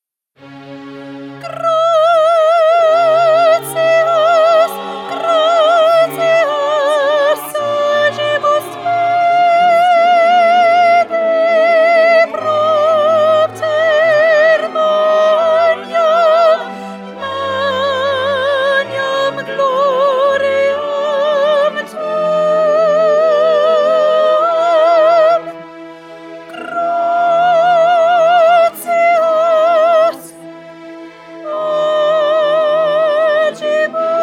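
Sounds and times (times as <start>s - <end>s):
first soprano singing a mass: 1.3s - 34.2s.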